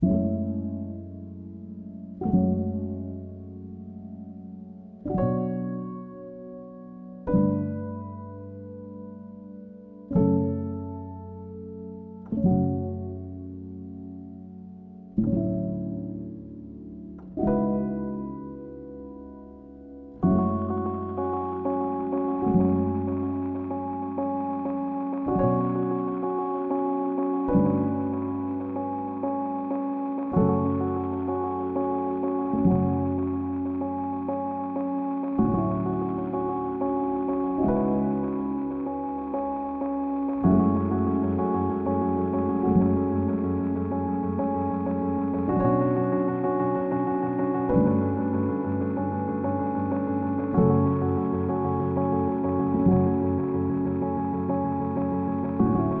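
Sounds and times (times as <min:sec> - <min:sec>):
lo-fi music: 0:00.0 - 0:55.9.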